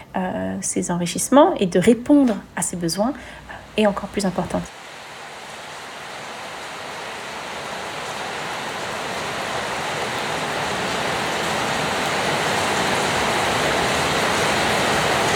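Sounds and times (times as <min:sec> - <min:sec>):
speech: 0:00.2 - 0:04.8
torrential downpour of heavy rain: 0:03.1 - 0:15.3.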